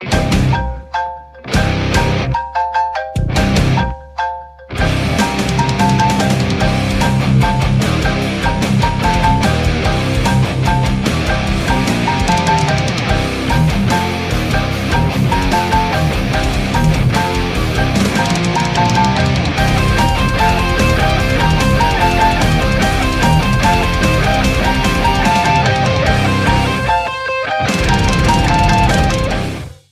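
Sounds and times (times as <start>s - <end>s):
heavy metal music played on xylophone: 0.0s - 29.9s.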